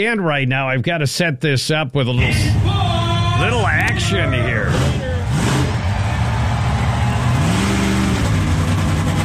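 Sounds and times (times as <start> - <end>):
speech: 0.0 - 2.8, 3.4 - 5.6
monster truck engine revving: 2.2 - 9.2.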